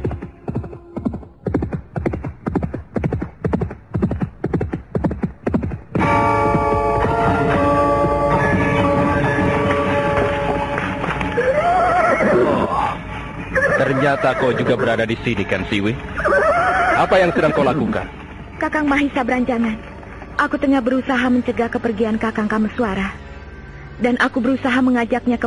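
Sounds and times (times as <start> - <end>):
horse hoofbeats galloping: 0.0 - 12.6, 13.6 - 19.0
horse neighing: 11.3 - 15.0, 16.2 - 18.0
speech: 14.0 - 16.4, 17.0 - 19.8, 20.4 - 23.2, 24.0 - 25.4.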